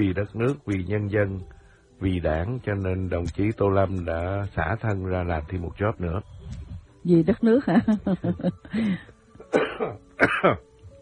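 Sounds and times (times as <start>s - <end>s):
speech: 0.0s - 6.4s, 7.0s - 10.7s
person coughing: 9.4s - 10.6s.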